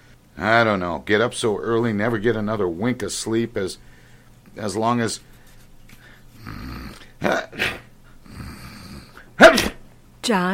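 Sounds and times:
speech: 0.4s - 3.9s, 4.5s - 5.3s, 7.2s - 7.8s, 10.3s - 10.5s
low rasping snore-like breaths: 6.3s - 7.1s, 8.2s - 9.3s
loud sneeze: 7.2s - 7.9s, 9.3s - 9.9s.

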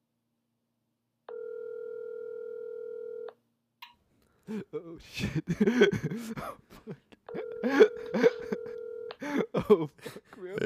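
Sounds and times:
telephone dial tone while placing a call: 1.3s - 3.4s, 7.3s - 9.2s
speech: 4.5s - 8.2s, 9.7s - 10.6s
laughter: 4.5s - 10.6s.

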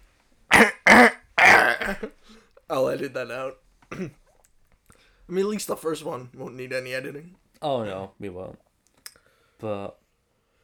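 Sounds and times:
person clearing throat: 0.5s - 2.1s, 3.9s - 4.2s
speech: 1.9s - 4.2s, 5.3s - 8.7s, 9.6s - 10.0s.

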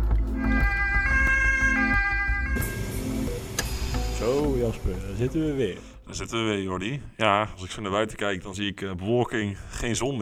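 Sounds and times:
two-tone ambulance siren wailing: 0.3s - 4.6s
speech: 4.2s - 10.1s.

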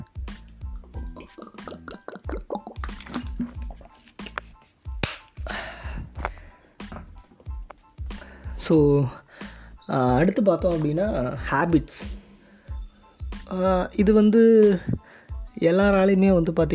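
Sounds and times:
person drinking water with gulps and swallows: 0.9s - 4.4s
speech: 8.7s - 9.2s, 9.9s - 12.2s, 13.5s - 15.0s, 15.6s - 16.7s.

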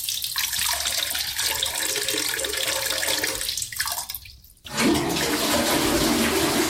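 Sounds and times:
toilet flushing: 0.8s - 3.5s, 4.7s - 6.6s.

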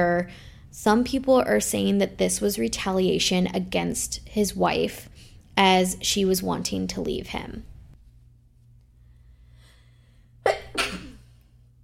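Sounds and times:
speech: 0.0s - 7.7s
person sneezing: 10.4s - 11.4s.

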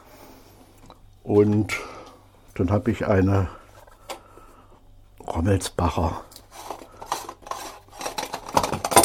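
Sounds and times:
speech: 1.2s - 2.0s, 2.6s - 3.6s, 5.4s - 6.3s
dishes and cutlery clattering and scraping on a cutting board: 7.1s - 9.0s.

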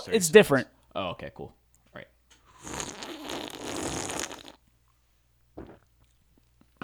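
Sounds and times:
speech: 0.0s - 2.8s
slurping sip of Fresca soda: 2.5s - 4.6s
short gulp-like swallow: 2.6s - 4.6s, 5.6s - 5.9s.

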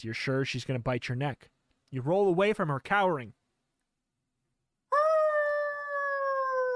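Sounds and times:
speech: 0.0s - 3.4s
dog howling moan: 5.0s - 6.7s.

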